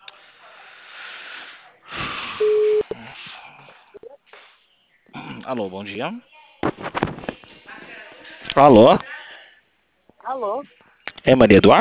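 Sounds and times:
telephone call ringing tone beep on a phone line: 0:02.4 - 0:02.8
speech: 0:05.5 - 0:07.0, 0:08.6 - 0:09.2, 0:10.4 - 0:11.8.

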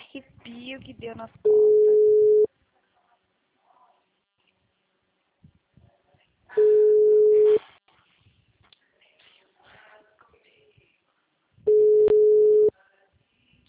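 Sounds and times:
speech: 0:00.1 - 0:01.8
telephone busy signal tones: 0:01.5 - 0:02.5, 0:06.6 - 0:07.6, 0:11.7 - 0:12.7.

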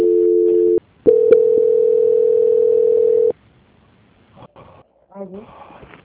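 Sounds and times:
telephone line tone during bank call transfer: 0:00.0 - 0:03.3.

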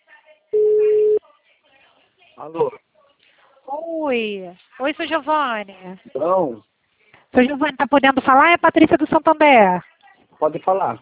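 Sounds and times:
telephone call tone while a call is placed again: 0:00.6 - 0:01.2
speech: 0:02.4 - 0:02.9, 0:03.8 - 0:06.7, 0:07.3 - 0:10.9.

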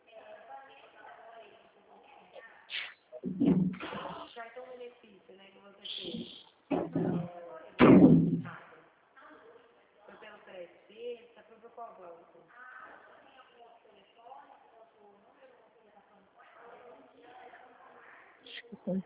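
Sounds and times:
people talking: 0:00.0 - 0:19.0
dull knocks and bumps: 0:03.2 - 0:03.8
door slamming shut with a heavy booming thud: 0:03.2 - 0:04.1, 0:06.7 - 0:08.5.

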